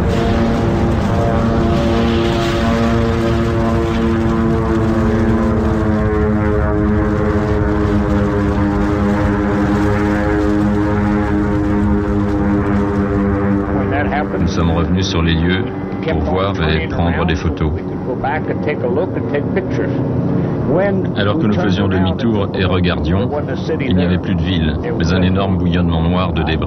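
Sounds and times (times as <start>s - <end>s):
propeller airplane engine drone in flight: 0.0s - 26.6s
speech: 15.2s - 26.6s.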